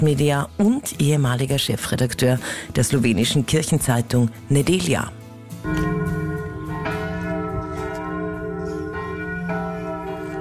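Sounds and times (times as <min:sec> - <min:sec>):
speech: 0:00.0 - 0:05.9
church bells of the Basilica of San Francesco in Assisi ringing: 0:05.6 - 0:10.3.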